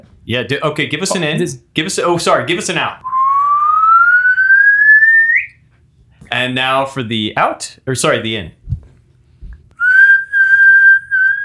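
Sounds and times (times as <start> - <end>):
speech: 0.0 - 3.1, 6.3 - 8.6
person whistling a single note while breathing in: 3.0 - 5.5, 9.8 - 11.4
soft thump: 8.7 - 9.6.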